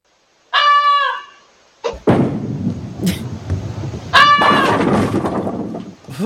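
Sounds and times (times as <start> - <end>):
goose giving loud harsh honks: 0.6 - 1.4, 4.1 - 4.8
rough rumbling clatter of noise: 2.0 - 6.2.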